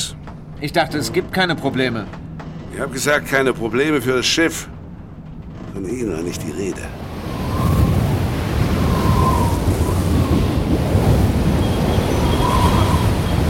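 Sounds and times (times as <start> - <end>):
gusting wind: 0.0 - 13.4
speech: 0.6 - 4.8, 5.8 - 7.0
crashing waves of a stormy sea: 6.9 - 13.4.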